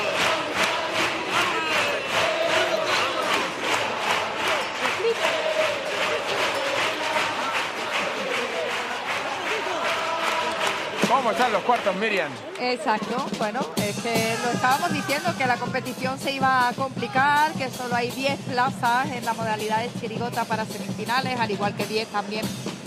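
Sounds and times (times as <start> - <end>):
theatre audience crowd voices roaring at a carnival chirigota competition: 0.0 - 13.4
theatre audience rhythmic clapping at a carnival chirigota competition: 0.0 - 22.8
speech: 11.3 - 22.7.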